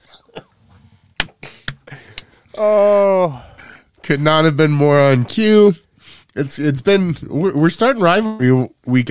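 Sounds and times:
coughs: 0.0s - 0.7s
speech: 2.6s - 3.5s, 4.1s - 5.8s, 6.4s - 9.0s.

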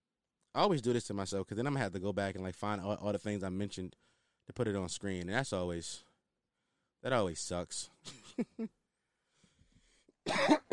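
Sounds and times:
speech: 0.6s - 6.1s, 7.0s - 8.8s
person coughing: 10.3s - 10.7s.

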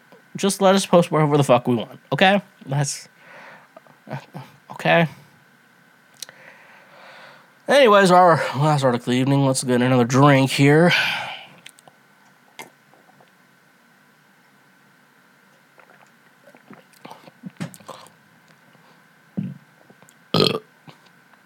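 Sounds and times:
speech: 0.4s - 3.1s, 4.1s - 5.2s, 7.7s - 11.2s
small mouth sounds: 12.6s - 13.4s, 15.6s - 18.2s
person burping: 19.4s - 19.6s, 20.3s - 20.7s.

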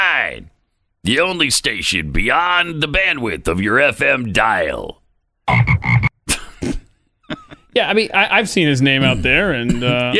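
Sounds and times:
speech: 0.2s - 5.8s, 7.8s - 10.1s
frog croaking with throaty raspy pulses: 5.5s - 6.1s.

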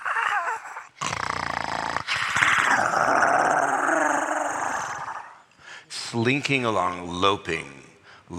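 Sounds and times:
dogs growling in an alley: 0.0s - 5.4s
speech: 6.1s - 8.3s.

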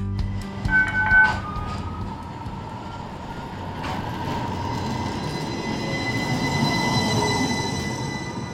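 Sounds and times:
streetcar rolling along its rails: 0.2s - 8.5s
faint squealing tones of a streetcar: 0.3s - 8.5s
streetcar bell dings: 0.7s - 2.2s.

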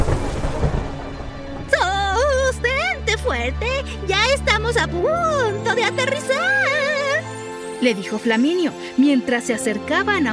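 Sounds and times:
low rolling rumble of distant thunder: 0.0s - 2.8s
voice with sweeping melodic pitch: 1.7s - 10.3s
speech: 3.4s - 6.8s, 7.8s - 10.3s.

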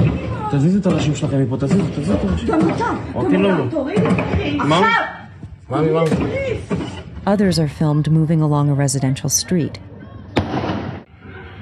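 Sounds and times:
speech: 0.5s - 9.9s
gunshot on a residential street: 10.4s - 11.1s.

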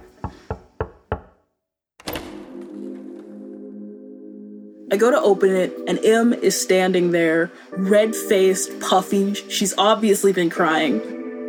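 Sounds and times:
knocking on a door: 0.0s - 1.4s
speech: 4.9s - 11.2s.

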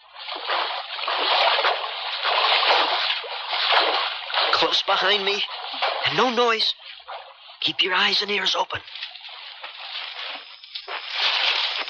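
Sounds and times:
person wading through water, sloshing and splashing: 0.0s - 11.8s
speech: 4.6s - 6.8s, 7.6s - 9.0s.

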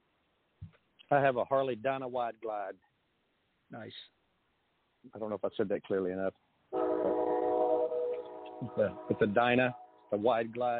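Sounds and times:
speech: 1.1s - 2.9s, 3.7s - 4.2s, 5.0s - 7.2s, 8.6s - 10.7s
train horn blast by the tracks: 6.7s - 10.0s.

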